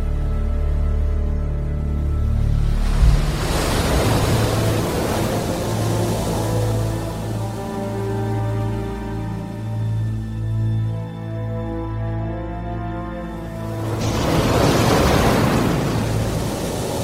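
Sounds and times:
steady low musical drone: 0:00.0 - 0:17.0
violent storm waves crashing at sea: 0:02.6 - 0:08.7, 0:13.6 - 0:17.0.

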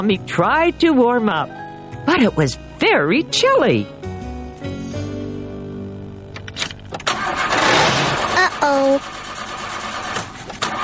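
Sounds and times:
speech: 0:00.0 - 0:04.0, 0:08.6 - 0:09.2
car engine cranking and failing to start in cold snowy weather: 0:06.4 - 0:10.8.

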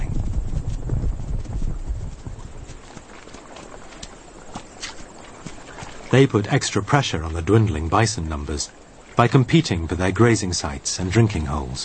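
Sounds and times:
low rumble: 0:00.0 - 0:02.7
horse hooves clip-clopping at a walking pace: 0:00.0 - 0:07.6
speech: 0:06.1 - 0:11.8.

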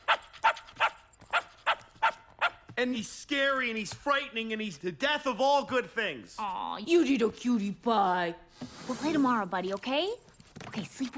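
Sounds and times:
dog barking: 0:00.0 - 0:02.6
speech: 0:02.8 - 0:10.2, 0:10.8 - 0:11.1.

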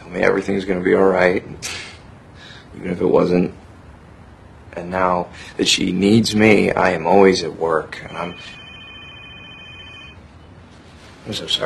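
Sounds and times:
low noise: 0:00.0 - 0:11.6
speech: 0:00.1 - 0:01.8, 0:02.8 - 0:03.6, 0:04.8 - 0:08.6, 0:11.3 - 0:11.6
telephone ringing with a high steady electronic tone: 0:08.0 - 0:10.3.

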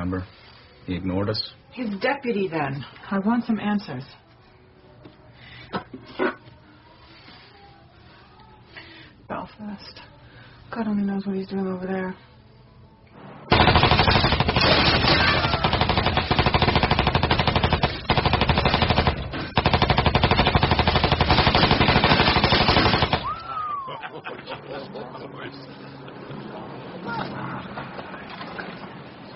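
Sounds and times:
speech: 0:00.1 - 0:04.2, 0:05.7 - 0:06.4, 0:09.4 - 0:10.1, 0:10.7 - 0:12.3
.45 caliber submachine gun firing: 0:13.5 - 0:23.4
laughter: 0:23.4 - 0:25.4.

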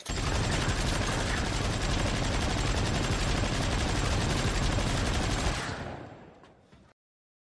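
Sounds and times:
gun firing in a sustained rapid burst: 0:00.0 - 0:06.2.

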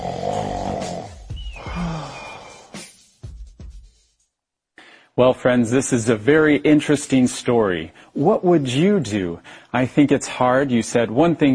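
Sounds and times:
two people snoring: 0:00.0 - 0:02.9
speech: 0:05.2 - 0:11.5.

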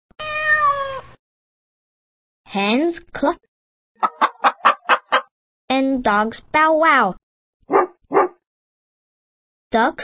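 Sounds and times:
cat meowing: 0:00.2 - 0:01.1
speech: 0:02.5 - 0:04.3, 0:05.8 - 0:07.9, 0:09.7 - 0:10.0.

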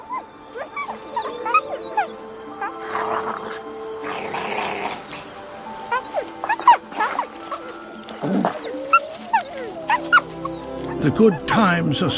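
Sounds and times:
Arctic wolf cubs whimpering and yelping while feeding on Arctic hare on the tundra: 0:00.0 - 0:11.5
Arctic wolf cubs growling scuffles: 0:05.9 - 0:11.0
speech: 0:11.0 - 0:12.1.

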